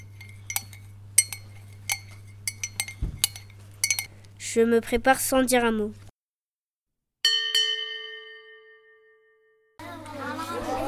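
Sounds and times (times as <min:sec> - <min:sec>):
spoon clinking against a bowl while eating oat flakes: 0:00.0 - 0:04.2
low steady hum: 0:00.0 - 0:04.6
speech: 0:04.5 - 0:06.0
laughter: 0:09.8 - 0:10.8.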